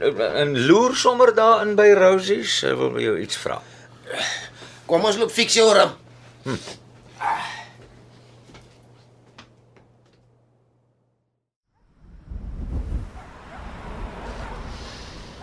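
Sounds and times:
speech: 0.0 - 6.8
strong gust of east wind roaring: 11.8 - 15.4.

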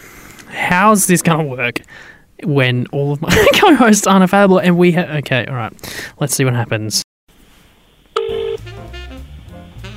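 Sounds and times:
click: 0.3 - 0.5
speech: 0.7 - 7.0
steady telephone tone: 8.1 - 8.7.

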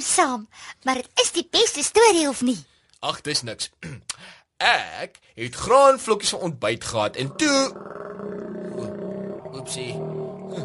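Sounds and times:
speech: 0.1 - 8.6, 9.5 - 10.6
hungry person's stomach growling loudly: 7.0 - 10.6.

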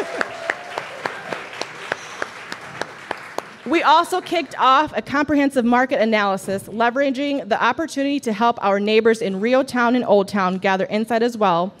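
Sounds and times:
small audience applauding: 0.0 - 4.5
speech: 3.7 - 11.7.

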